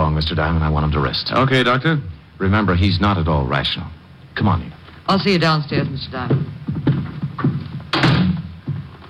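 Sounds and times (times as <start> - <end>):
speech: 0.2 - 6.8
door thudding shut: 7.9 - 8.6.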